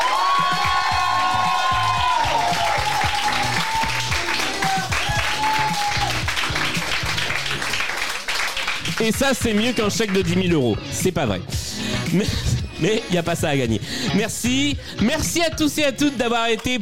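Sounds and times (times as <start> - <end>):
audience shouting at a season's final live show: 0.0 - 6.2
audience applause at a season's final live show: 0.0 - 10.3
speech: 9.0 - 16.8.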